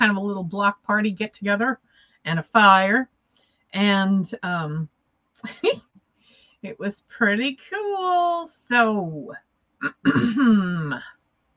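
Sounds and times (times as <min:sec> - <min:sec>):
speech: 0:00.0 - 0:03.1, 0:03.7 - 0:05.9, 0:06.6 - 0:11.2
throat clearing: 0:09.8 - 0:11.0.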